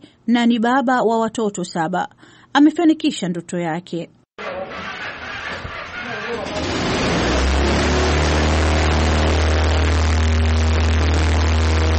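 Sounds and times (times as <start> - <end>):
speech: 0.3 - 4.2
homemade helicopter engine starting up inside a garage: 4.4 - 11.9.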